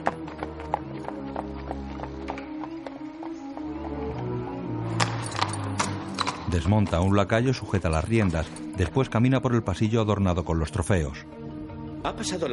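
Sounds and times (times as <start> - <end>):
horse hooves clip-clopping as a rider travels through a forest at dusk: 0.0 - 7.1
speech: 6.5 - 11.4, 12.0 - 12.5.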